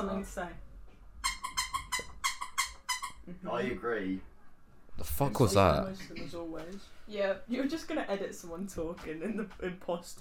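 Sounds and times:
speech: 0.2s - 0.7s, 3.3s - 4.3s, 5.0s - 10.1s
squeaky toy squeaking: 1.2s - 3.3s.

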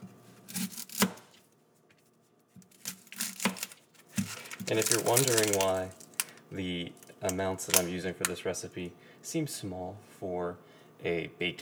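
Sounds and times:
knife finely chopping an onion for a Greek baked pasta dish: 0.5s - 1.3s, 2.7s - 5.8s
speech: 4.7s - 11.5s.

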